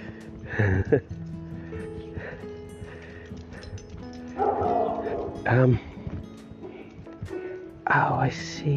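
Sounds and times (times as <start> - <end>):
speech: 0.5 - 1.2, 5.5 - 5.9, 8.2 - 8.7
small dog barking and yipping: 4.4 - 5.5.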